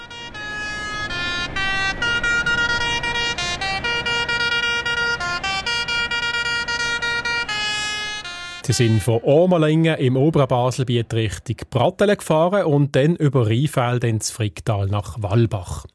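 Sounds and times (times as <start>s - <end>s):
convoy of tractor horns honking in Basel streets: 0.0s - 10.1s
speech: 8.7s - 15.9s.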